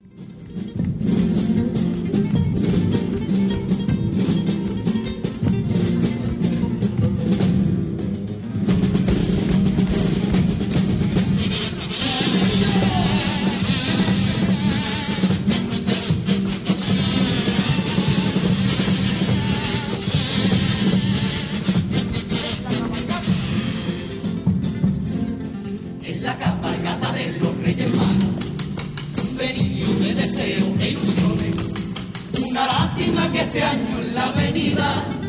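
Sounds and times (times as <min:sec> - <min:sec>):
strummed guitars: 0:00.0 - 0:35.2
Cádiz carnival comparsa choral group singing: 0:11.5 - 0:15.7, 0:16.7 - 0:21.9, 0:26.0 - 0:28.6, 0:29.2 - 0:35.2.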